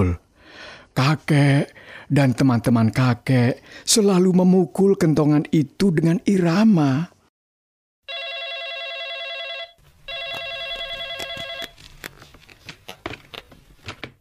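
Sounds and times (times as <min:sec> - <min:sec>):
speech: 0:01.0 - 0:07.1
telephone ringing with a bright buzzy electronic trill: 0:08.1 - 0:11.8.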